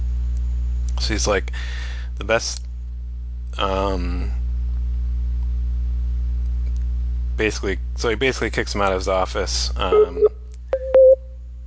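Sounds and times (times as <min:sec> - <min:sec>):
low steady hum: 0:00.0 - 0:11.6
speech: 0:01.0 - 0:02.7, 0:03.5 - 0:04.4, 0:07.4 - 0:10.3
short electronic beeps on a phone line: 0:09.9 - 0:11.3.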